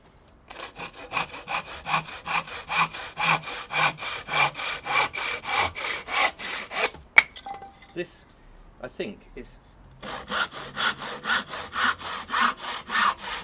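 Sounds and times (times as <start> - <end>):
hand saw cutting wood: 0.5 - 7.0, 10.0 - 13.4
speech: 8.0 - 8.2, 8.8 - 9.7.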